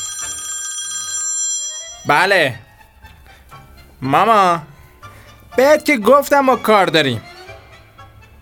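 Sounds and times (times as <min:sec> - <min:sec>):
mobile phone ringing: 0:00.0 - 0:02.7
speech: 0:02.0 - 0:02.6, 0:04.0 - 0:04.7, 0:05.6 - 0:07.3.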